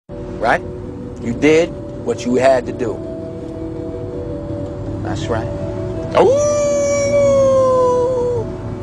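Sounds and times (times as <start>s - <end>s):
speech: 0.4s - 3.1s, 5.0s - 6.6s
dog howling like a wolf: 6.1s - 8.5s.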